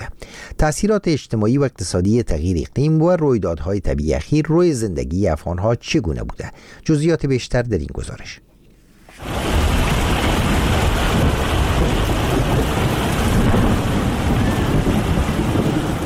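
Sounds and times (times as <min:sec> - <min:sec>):
speech: 0:00.6 - 0:08.5
heavy rain: 0:09.1 - 0:16.0
low rumbling thunder: 0:09.2 - 0:16.0.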